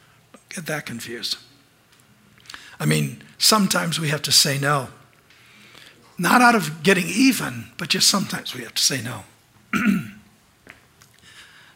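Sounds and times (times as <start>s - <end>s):
speech: 0.5s - 1.5s, 2.8s - 5.0s, 6.2s - 10.1s
person clearing throat: 9.7s - 10.2s.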